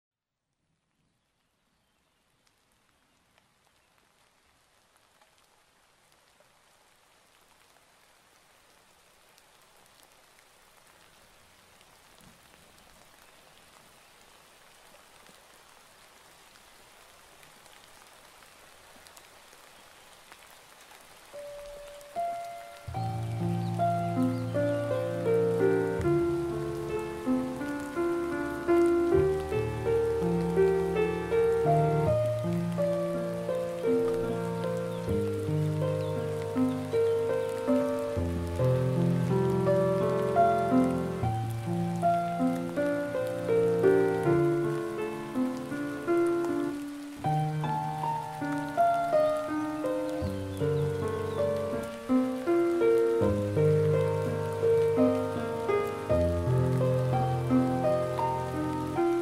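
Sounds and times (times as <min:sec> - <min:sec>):
piano piece: 0:21.4 - 0:59.2.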